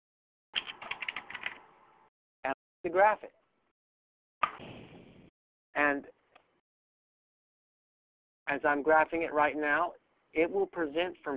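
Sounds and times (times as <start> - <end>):
typing a web address on a computer keyboard: 0.6 - 1.6
speech: 2.8 - 3.4, 8.5 - 11.3.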